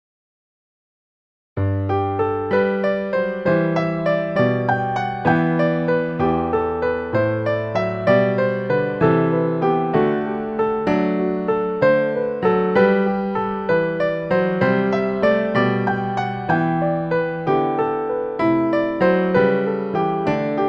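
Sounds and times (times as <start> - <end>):
jazz piano wedding processional: 1.6 - 20.6.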